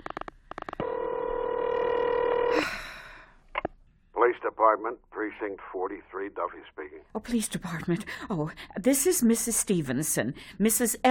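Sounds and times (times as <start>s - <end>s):
old telephone dialing pulses: 0.1s - 2.6s
steady telephone tone: 0.8s - 2.7s
speech: 4.6s - 11.1s.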